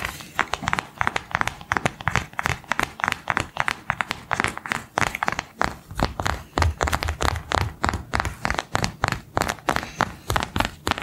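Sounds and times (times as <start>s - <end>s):
rapid tapping on a karda: 0.0s - 11.0s.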